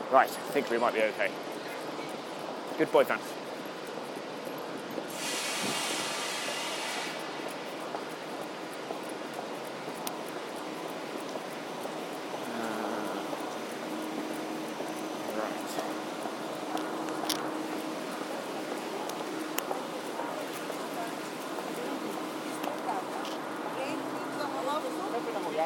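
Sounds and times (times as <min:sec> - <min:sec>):
faint rhythmic clatter of train on rails: 0:00.0 - 0:05.2, 0:07.1 - 0:25.6
train rumbling steadily along the rails: 0:00.0 - 0:25.6
speech: 0:00.1 - 0:01.6, 0:02.8 - 0:03.4
brief bright hiss: 0:05.1 - 0:07.4.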